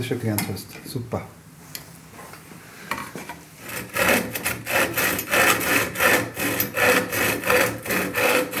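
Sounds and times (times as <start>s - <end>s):
speech: 0.0s - 1.4s
hand saw cutting a wooden board during a woodworking lesson: 3.6s - 8.5s.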